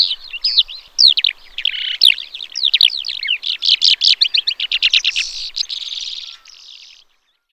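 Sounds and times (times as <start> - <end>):
Calandra lark Melanocorhypha calandra singing: 0.0 - 7.5.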